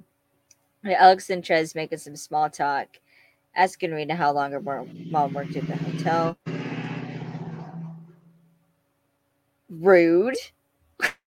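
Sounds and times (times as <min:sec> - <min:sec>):
speech: 0:00.8 - 0:03.0, 0:03.6 - 0:06.6, 0:09.8 - 0:11.1
truck rumbling past outside: 0:04.4 - 0:08.7.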